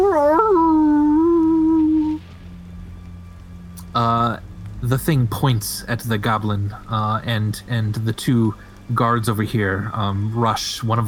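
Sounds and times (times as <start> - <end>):
human voice imitating wolves howling: 0.0 - 2.2
speech: 4.9 - 11.0.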